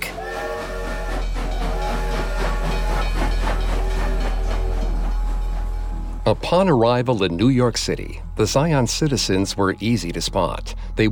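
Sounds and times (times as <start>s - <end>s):
train steam hissing: 0.0s - 6.8s
rhythmic chugging pulse of a train: 0.0s - 11.0s
train rumbling with a deep low drone: 0.0s - 11.0s
speech: 6.3s - 11.0s.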